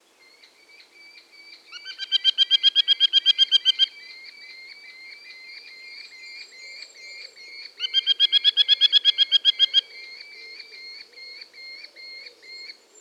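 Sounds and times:
Merlin Falco columbarius calling: 1.7s - 5.5s, 7.1s - 12.7s.

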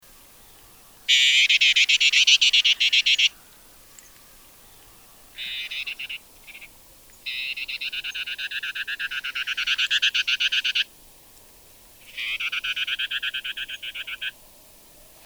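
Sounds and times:
Gray Vireo Vireo vicinior singing: 0.2s - 10.9s, 12.0s - 14.4s.

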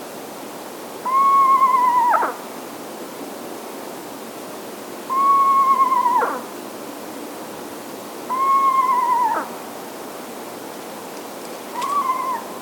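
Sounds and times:
Eastern Screech Owl Megascops asio whistling: 1.0s - 2.3s, 5.1s - 6.5s, 8.3s - 9.5s, 11.7s - 12.6s.

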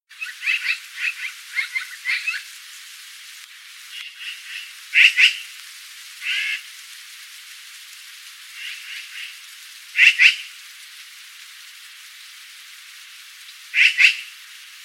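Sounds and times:
Black-billed Magpie Pica hudsonia: 0.2s - 2.4s, 4.2s - 5.4s, 6.2s - 6.6s, 10.0s - 10.4s, 13.8s - 14.2s.

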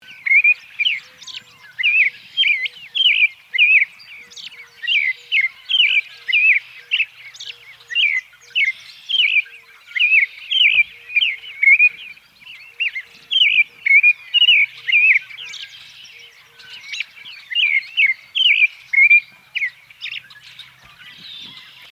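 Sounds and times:
American robin Turdus migratorius calling: 0.0s - 21.9s.

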